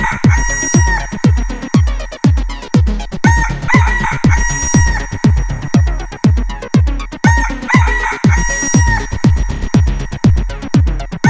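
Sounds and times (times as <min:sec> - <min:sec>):
rooster crowing: 0:00.0 - 0:01.8, 0:03.2 - 0:06.2, 0:07.2 - 0:10.2
heavy rhythmic thump: 0:00.0 - 0:11.2.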